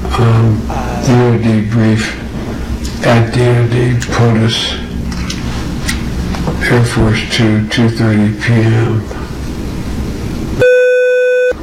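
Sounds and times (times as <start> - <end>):
noisy audio: 0.0 - 10.6
speech: 0.2 - 2.2, 3.0 - 4.8, 6.6 - 9.2
electronic censor beep pure tone: 10.6 - 11.6.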